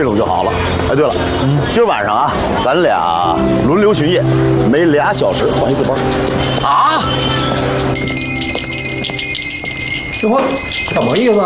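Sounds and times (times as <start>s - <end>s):
speech: 0.0s - 8.4s, 10.2s - 11.4s
wind chime ringing: 6.3s - 11.4s.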